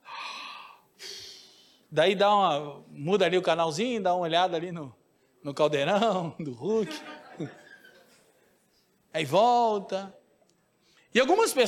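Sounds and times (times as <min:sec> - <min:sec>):
person yawning: 0:00.0 - 0:01.5
speech: 0:01.9 - 0:07.6, 0:09.2 - 0:10.2, 0:11.1 - 0:11.6
laughter: 0:06.7 - 0:08.4.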